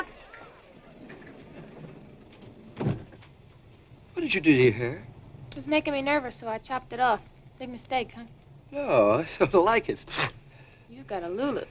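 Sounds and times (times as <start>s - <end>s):
low steady hum: 0.0s - 11.7s
sliding door rolling shut with a soft thud: 0.2s - 3.8s
speech: 4.2s - 11.7s.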